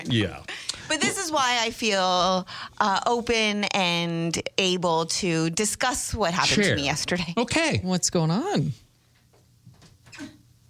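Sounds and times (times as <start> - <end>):
speech: 0.0 - 8.8
door creaking and clunking shut: 9.7 - 10.4.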